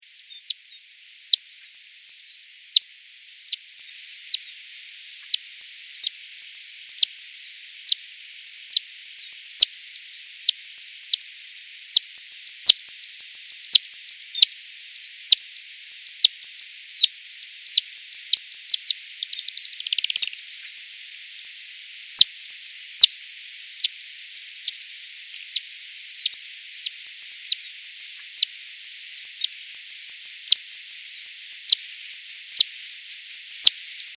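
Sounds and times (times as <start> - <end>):
slowed Daubenton's bat echolocation call: 0.0 - 34.1.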